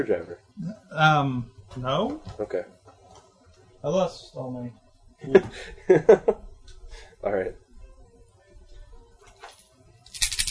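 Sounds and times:
speech: 0.0s - 2.8s, 3.8s - 6.4s, 7.2s - 7.6s
dice clattering onto a table: 10.1s - 10.5s.

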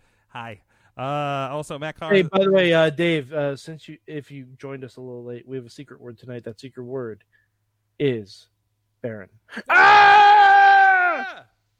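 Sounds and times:
speech: 0.3s - 7.4s, 8.0s - 11.5s
person yelling: 9.7s - 11.4s.

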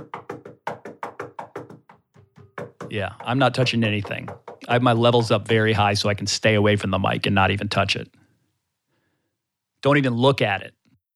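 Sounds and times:
knocking on a wooden table: 0.0s - 5.5s
speech: 2.9s - 8.2s, 9.8s - 10.8s.

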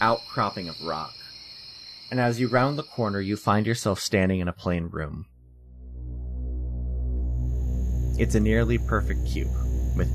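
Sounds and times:
speech: 0.0s - 1.3s, 2.1s - 5.3s, 8.2s - 10.1s
faint high whine: 5.4s - 10.1s
humming overhead lights: 5.4s - 10.1s.

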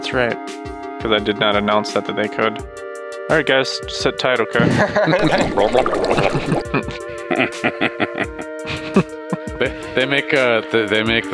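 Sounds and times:
speech: 0.1s - 8.2s, 9.0s - 11.3s
voice imitating a water cooler glugging: 5.2s - 6.7s.

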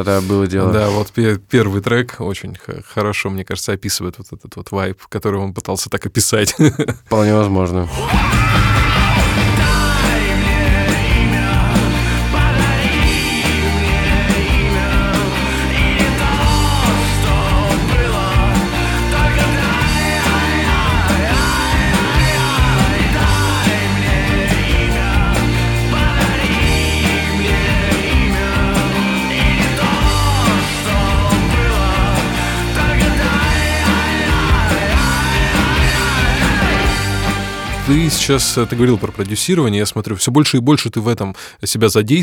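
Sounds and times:
speech: 0.0s - 8.6s, 37.9s - 42.2s
laughter: 6.4s - 7.3s
raw strained male voice singing a dark gothic americana song: 7.2s - 39.0s
band of guitars and drums: 7.9s - 39.5s.

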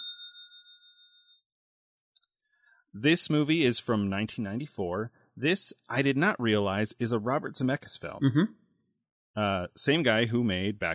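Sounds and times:
bright bell ding rung as a spoiler warning: 0.0s - 1.4s
speech: 2.9s - 8.6s, 9.4s - 10.9s.

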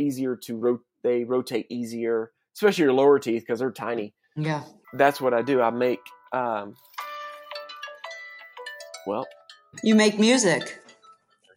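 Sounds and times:
speech: 0.0s - 7.0s, 9.0s - 10.8s
electronic phone chime with rising bell-like melody: 4.9s - 11.3s.

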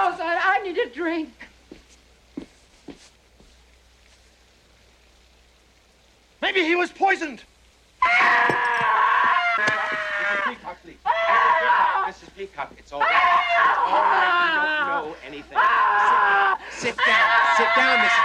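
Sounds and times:
speech: 0.9s - 1.5s, 6.5s - 8.8s, 10.8s - 18.2s
woman screaming: 8.0s - 12.1s, 13.0s - 18.2s.

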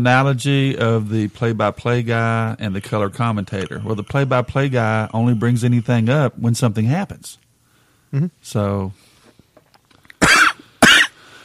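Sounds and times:
speech: 0.0s - 7.4s, 8.1s - 9.0s
person coughing from e-juice caught in the throat: 10.2s - 11.2s.

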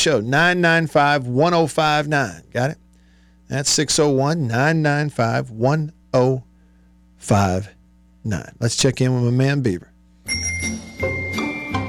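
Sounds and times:
speech: 0.0s - 2.8s, 3.5s - 6.5s, 7.2s - 10.5s
bell ringing: 10.2s - 11.8s.

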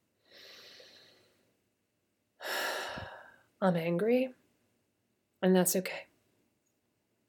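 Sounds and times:
deep breath in and out during a calming hands-on-heart exercise: 0.2s - 1.6s, 2.4s - 3.5s
speech: 3.6s - 4.4s, 5.4s - 6.1s.

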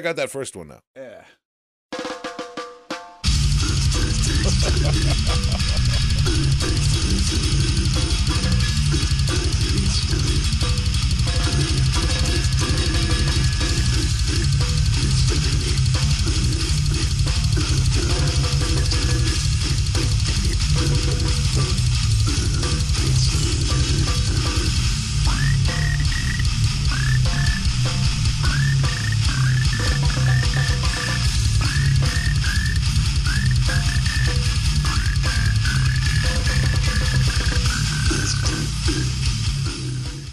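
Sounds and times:
speech: 0.0s - 1.4s, 4.6s - 13.2s
pounding rapid drums: 1.9s - 40.3s
loud dense slam death metal track with heavy distorted instruments: 3.2s - 40.3s
laughter: 4.0s - 6.8s
deep guttural croaking vocals: 4.1s - 8.0s.

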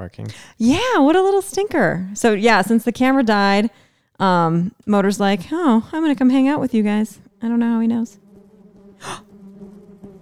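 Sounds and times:
speech: 0.0s - 8.2s, 9.0s - 9.2s
short breathy gasp-like burst: 0.2s - 0.6s
voice humming a low steady buzz imitating a bee: 9.0s - 9.3s.

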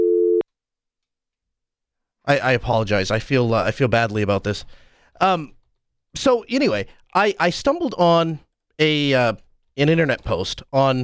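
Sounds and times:
telephone dial tone: 0.0s - 0.4s
speech: 2.3s - 11.0s.

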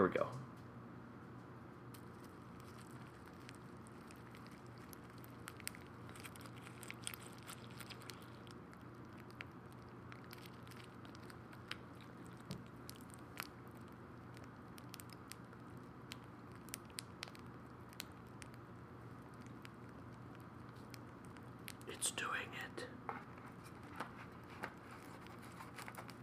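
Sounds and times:
low hum: 0.0s - 26.2s
speech: 0.1s - 0.4s, 22.0s - 23.0s
crispy rice cereal crackling in milk: 1.9s - 22.7s, 23.3s - 26.2s.

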